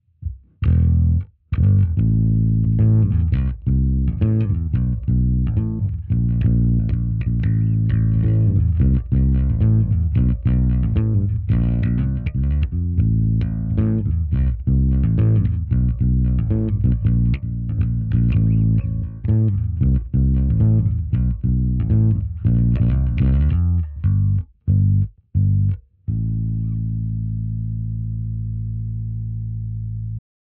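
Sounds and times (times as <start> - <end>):
bassline: 0.0 - 30.2.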